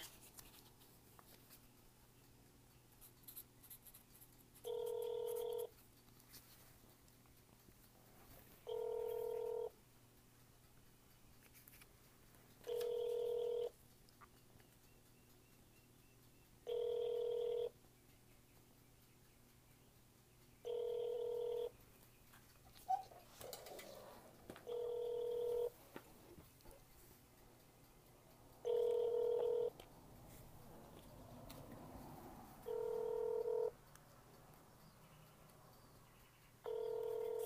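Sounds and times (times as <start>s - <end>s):
ringback tone of a call connecting to a city police precinct office in Minneapolis: 4.6s - 5.7s, 8.7s - 9.7s, 12.7s - 13.8s, 16.7s - 17.7s, 20.7s - 21.7s, 24.7s - 25.7s, 28.6s - 29.7s, 32.6s - 33.7s, 36.7s - 37.4s.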